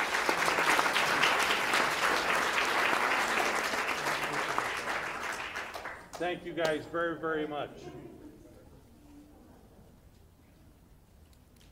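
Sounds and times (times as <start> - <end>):
audience applause: 0.0 - 6.2
speech: 6.2 - 8.2.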